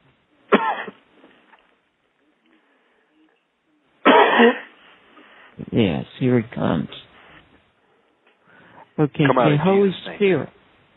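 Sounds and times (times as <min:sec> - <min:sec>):
loud harsh coughs: 0:00.5 - 0:01.0, 0:04.0 - 0:04.8
speech: 0:04.4 - 0:04.6, 0:05.8 - 0:07.0, 0:09.0 - 0:10.6.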